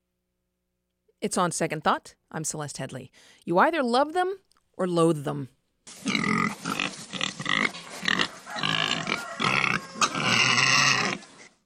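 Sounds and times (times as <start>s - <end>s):
speech: 1.2s - 6.4s
pigs grunting and snorting: 6.0s - 11.5s.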